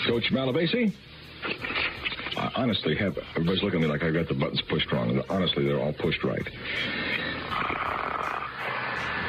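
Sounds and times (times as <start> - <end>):
speech: 0.1 - 1.6, 2.6 - 7.8
person snoring: 6.6 - 9.2.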